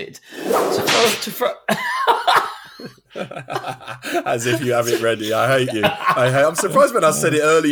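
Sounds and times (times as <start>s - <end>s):
speech: 0.0s - 7.7s
whip-crack sound effect: 0.4s - 1.4s
people laughing: 1.7s - 7.7s.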